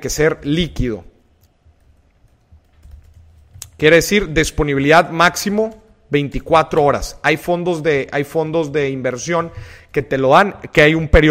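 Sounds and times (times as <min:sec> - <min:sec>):
speech: 0:00.0 - 0:01.1, 0:03.8 - 0:11.3
typing on a computer keyboard: 0:01.3 - 0:04.6, 0:05.2 - 0:07.0.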